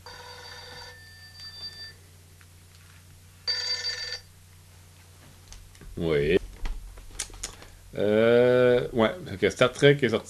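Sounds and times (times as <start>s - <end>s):
telephone ringing with an electronic trill: 0.0s - 2.0s, 3.4s - 4.3s
steady low hum: 0.0s - 10.2s
speech: 6.0s - 6.4s, 8.0s - 8.3s, 9.3s - 10.2s.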